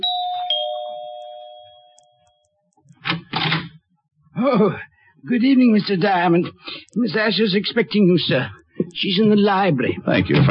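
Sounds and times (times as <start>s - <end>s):
two-note apartment doorbell chime: 0.0s - 2.4s
speech: 4.4s - 10.4s.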